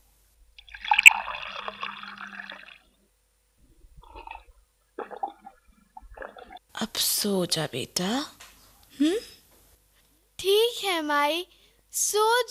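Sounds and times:
water poured into a vessel for drinking: 0.6 - 2.9, 3.8 - 6.6
speech: 6.8 - 8.4, 9.0 - 9.3, 11.0 - 12.4.

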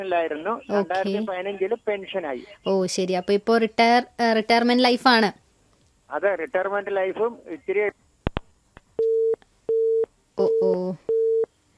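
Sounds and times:
speech: 0.0 - 5.4, 6.1 - 8.0, 10.4 - 11.1
telephone busy tone after a call disconnects: 9.0 - 11.5.

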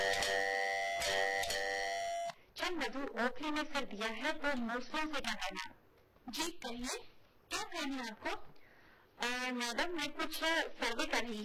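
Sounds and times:
electric doorbell buzzing at a yellow house: 0.0 - 2.4
speech: 2.7 - 7.1, 7.7 - 8.5, 9.2 - 11.4.

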